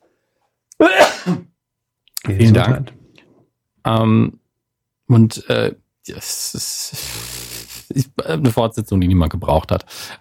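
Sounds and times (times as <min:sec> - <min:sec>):
speech: 0:00.8 - 0:01.4, 0:02.3 - 0:03.0, 0:03.8 - 0:04.4, 0:05.1 - 0:10.1
person sneezing: 0:00.8 - 0:01.5.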